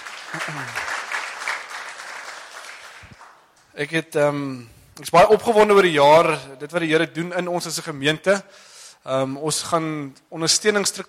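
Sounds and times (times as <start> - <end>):
crowd applauding in a large room: 0.0 - 3.5
speech: 0.3 - 0.9, 3.8 - 11.0.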